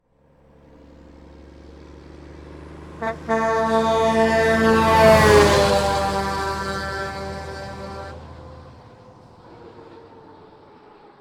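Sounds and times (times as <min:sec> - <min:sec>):
semi truck passing by: 0:00.1 - 0:11.1.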